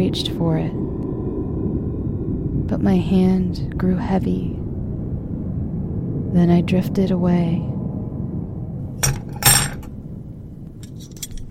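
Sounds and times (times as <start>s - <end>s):
speech: 0.0s - 1.0s, 2.7s - 4.6s, 6.3s - 7.7s
low steady hum: 0.0s - 11.5s
metal instruments being put together on a tray: 9.0s - 10.0s, 10.8s - 11.5s.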